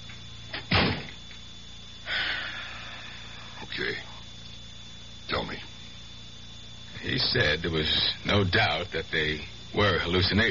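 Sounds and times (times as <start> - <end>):
door swinging shut: 0.5 - 1.2
speech: 7.2 - 10.4.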